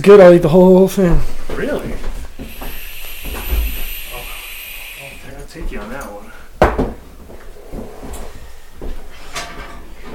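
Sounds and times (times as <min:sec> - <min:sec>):
speech: 0:00.0 - 0:01.9
butter melting and sizzling in a pan: 0:02.4 - 0:05.3.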